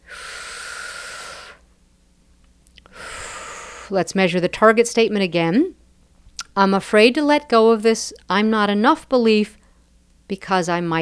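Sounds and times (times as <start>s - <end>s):
person taking a deep breath during a guided self-help exercise: 0.0s - 1.7s, 2.8s - 4.0s
speech: 3.9s - 5.8s, 6.6s - 9.6s, 10.3s - 11.0s.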